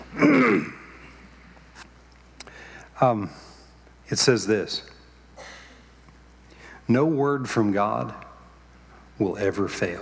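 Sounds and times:
man clearing his throat: 0:00.1 - 0:01.1
speech: 0:00.2 - 0:00.8, 0:03.0 - 0:03.5, 0:04.1 - 0:04.9, 0:06.9 - 0:08.3, 0:09.2 - 0:10.0.

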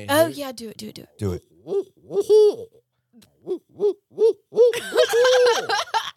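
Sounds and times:
speech: 0:00.0 - 0:05.9
person vocally imitating owl hoots: 0:01.6 - 0:04.8
people laughing: 0:04.7 - 0:06.1.

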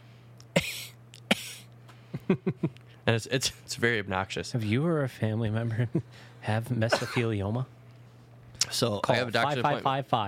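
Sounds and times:
low steady hum: 0:00.0 - 0:10.2
person coughing hiccup-like coughs: 0:00.6 - 0:01.7, 0:06.9 - 0:07.2
speech: 0:02.3 - 0:07.8, 0:08.7 - 0:10.2.

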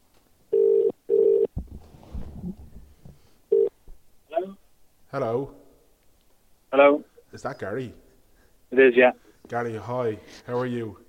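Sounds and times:
telephone ringing tone on an outgoing call: 0:00.5 - 0:01.5, 0:03.5 - 0:03.7
speech: 0:05.1 - 0:05.6, 0:06.7 - 0:08.0, 0:08.7 - 0:11.0.

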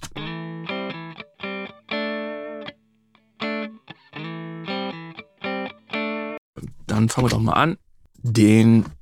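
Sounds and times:
dry electric guitar with reverb turned off playing chord stabs and held chords: 0:00.2 - 0:06.4
speech: 0:07.0 - 0:09.0.

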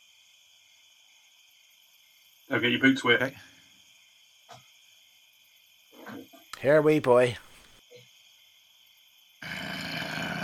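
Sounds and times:
speech: 0:02.5 - 0:03.5, 0:06.6 - 0:07.5
monster growling: 0:09.4 - 0:10.4.

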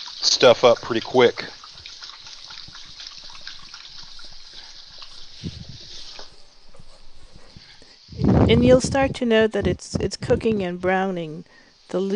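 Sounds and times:
running water from a kitchen tap: 0:00.0 - 0:06.6
speech: 0:00.2 - 0:01.6, 0:08.5 - 0:12.1.

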